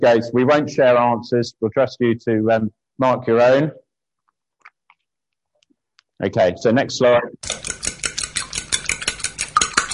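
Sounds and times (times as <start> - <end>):
speech: 0.0 - 3.8, 6.2 - 7.5
whisking an egg in a kitchen bowl: 7.4 - 9.9.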